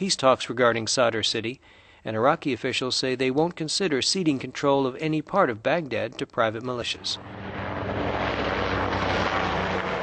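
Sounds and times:
speech: 0.0s - 7.6s
military helicopters flying overhead: 7.0s - 10.0s.

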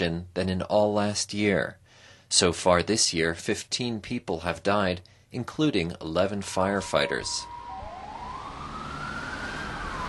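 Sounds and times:
speech: 0.0s - 7.6s
fire engine siren wailing leaving a downtown fire station in Coimbra: 6.4s - 10.0s.

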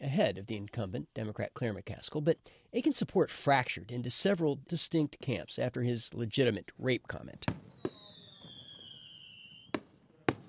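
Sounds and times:
speech: 0.0s - 7.7s
fireworks bursts: 7.4s - 10.4s
firework whistling shriek: 7.6s - 9.8s.

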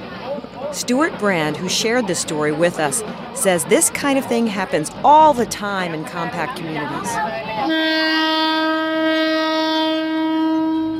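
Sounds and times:
speech: 0.7s - 9.3s
train horn blaring in one loud sustained steady tone: 6.9s - 10.9s.

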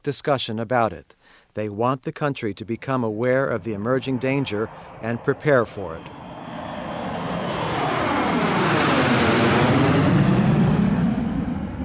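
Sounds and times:
speech: 0.0s - 6.2s
jetliner engines roaring during takeoff from airport: 3.2s - 11.8s.

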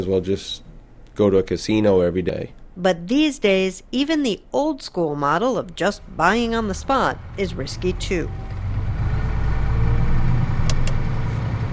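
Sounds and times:
speech: 0.0s - 8.5s
large oil delivery truck engine idling: 5.8s - 11.7s
sharp clicks or clanks: 10.6s - 11.0s.

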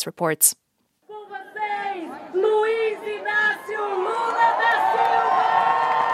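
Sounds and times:
speech: 0.0s - 0.6s
individual yells: 1.1s - 6.1s
crowd roaring and cheering at a campaign rally: 1.2s - 6.1s.

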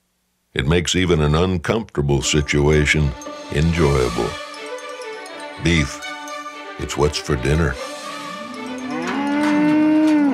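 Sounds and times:
speech: 0.6s - 4.4s, 5.6s - 6.2s, 6.8s - 8.0s
cow mooing at a livestock auction market on a cold foggy morning: 8.1s - 10.3s.

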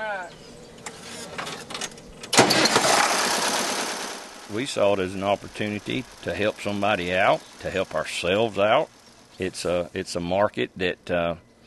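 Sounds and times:
red farm tractor engine rumbling on a vegetable and livestock farm west of St. Louis: 0.6s - 11.0s
speech: 4.5s - 11.5s.

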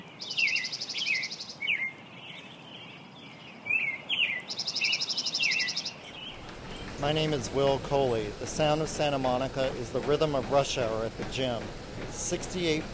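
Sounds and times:
migrating songbirds chirping on a mountain in Portland, Oregon at daybreak: 0.0s - 12.9s
speech: 7.0s - 12.9s.

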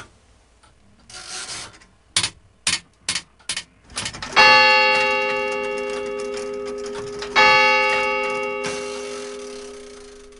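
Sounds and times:
mechanical clock ticking: 2.2s - 10.3s
resonant clock bell strikes: 4.2s - 10.3s.

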